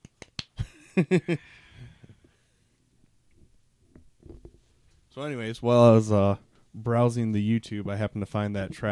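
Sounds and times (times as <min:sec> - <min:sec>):
golf clap applauding a music set: 0:00.0 - 0:00.6
speech: 0:01.0 - 0:01.6, 0:05.2 - 0:08.9.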